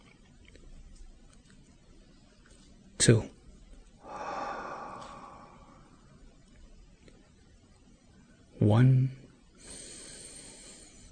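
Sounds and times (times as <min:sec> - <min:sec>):
speech: 0:03.0 - 0:03.3, 0:08.8 - 0:09.1
slow deep breath drawn in: 0:04.0 - 0:06.2, 0:09.6 - 0:11.0.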